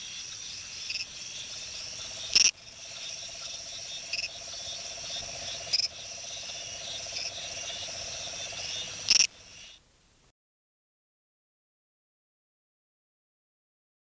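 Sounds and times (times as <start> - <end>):
buzzing insects: 0.0 - 9.8
northern sedgefrog Litoria bicolor chirping: 0.0 - 9.8.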